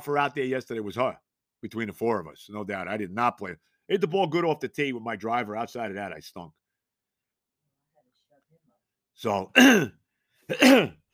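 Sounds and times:
speech: 0.0 - 6.6, 9.2 - 11.0
hacking cough with a rough voiced edge: 9.6 - 11.0.

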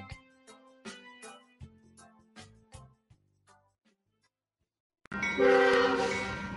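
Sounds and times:
loud train horn blasting in several chords: 5.2 - 6.5.

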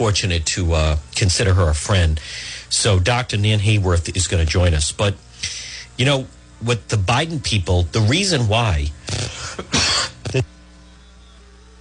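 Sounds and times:
speech: 0.0 - 10.5
harsh hoarse coughs: 9.1 - 10.4.

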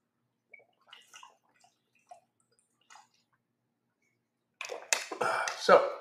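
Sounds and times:
person gulping water from a bottle: 0.5 - 3.4, 4.6 - 5.8
water sloshing in a bottle: 0.5 - 3.4, 4.0 - 5.6
speech: 5.6 - 5.9.

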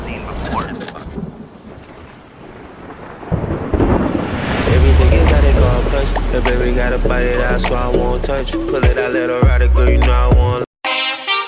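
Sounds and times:
gusting wind in a thunderstorm: 0.0 - 8.8
heavy rain in a thunderstorm: 0.0 - 8.8
low thunder rumbling: 1.0 - 9.2
speech: 6.8 - 10.7.

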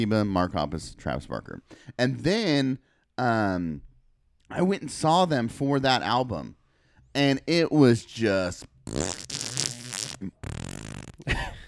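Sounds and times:
speech: 0.0 - 3.9, 4.5 - 9.5, 10.2 - 10.6
wet sputtering fart sound made with the mouth: 8.7 - 11.4.

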